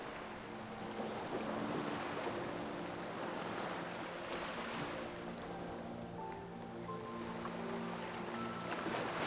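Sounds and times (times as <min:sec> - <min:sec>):
ocean waves washing against a shoreline: 0:00.0 - 0:09.2
soft sustained musical tones: 0:00.0 - 0:09.2.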